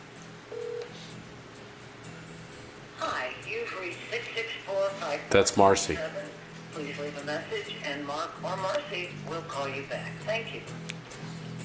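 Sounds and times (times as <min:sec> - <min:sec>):
telephone keypad tone as a phone number is dialed: 0:00.5 - 0:00.9
speech: 0:03.3 - 0:11.0.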